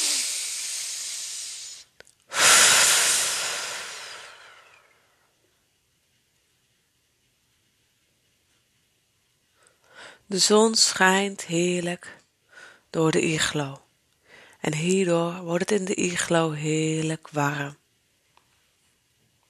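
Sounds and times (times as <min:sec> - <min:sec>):
calm breathing during a relaxation exercise: 0:00.0 - 0:05.3, 0:09.5 - 0:10.3, 0:12.0 - 0:13.0, 0:14.2 - 0:14.6
speech: 0:10.3 - 0:12.2, 0:12.9 - 0:13.8, 0:14.6 - 0:17.8.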